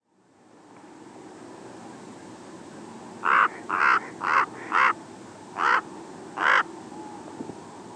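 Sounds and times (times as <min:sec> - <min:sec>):
background hiss: 0:00.0 - 0:07.9
common raven croaking in Arizona: 0:03.2 - 0:05.0, 0:05.6 - 0:05.8.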